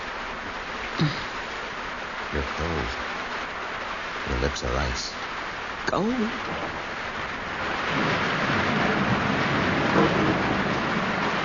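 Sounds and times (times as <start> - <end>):
steady dense rain pouring down: 0.0 - 11.4
speech: 1.0 - 1.2, 2.3 - 3.2, 4.3 - 7.0.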